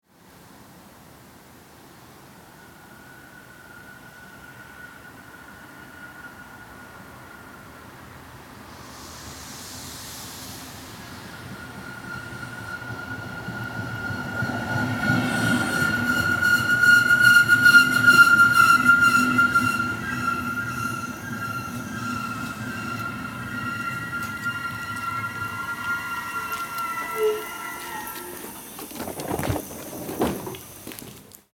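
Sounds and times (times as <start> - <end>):
regional train arriving: 2.0 - 31.4.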